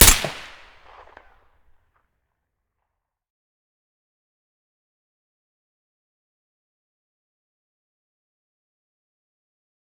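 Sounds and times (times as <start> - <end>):
SVD rifle shot with silencer: 0.0 - 1.2.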